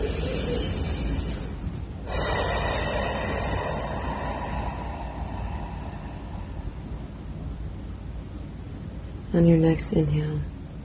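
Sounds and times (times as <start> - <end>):
slow deep breath in and out during a guided breathing meditation: 0.0 - 7.6
speech: 9.4 - 10.6.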